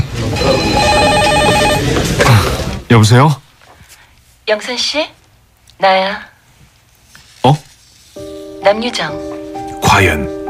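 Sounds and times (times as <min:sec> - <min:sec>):
telephone ringing with an electronic trill: 0:00.2 - 0:02.2
speech: 0:02.9 - 0:03.4, 0:04.5 - 0:05.2, 0:05.8 - 0:06.3, 0:07.4 - 0:07.6, 0:08.6 - 0:09.3, 0:09.9 - 0:10.4.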